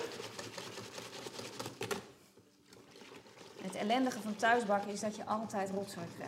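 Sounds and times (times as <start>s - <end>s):
whisk mixing flour and water in a bowl: 0.0s - 1.8s, 3.9s - 6.2s
speech: 3.7s - 6.2s.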